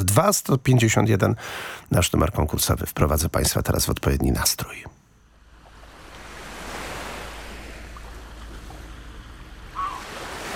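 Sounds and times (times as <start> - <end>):
speech: 0.2 - 5.0
steady rushing surf of seaside waves: 5.5 - 10.5
seagull cry: 9.7 - 10.5.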